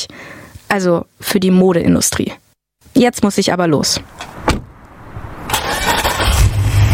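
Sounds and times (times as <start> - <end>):
speech: 0.0 - 2.4, 3.0 - 4.6
car engine cranking and starting: 4.1 - 6.9.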